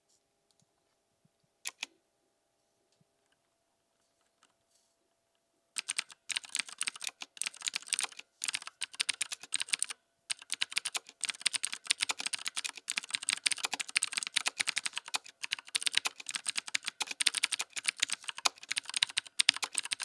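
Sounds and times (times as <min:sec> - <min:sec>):
tenkey tactile keyboard clicks: 0:01.7 - 0:01.9, 0:05.8 - 0:20.0.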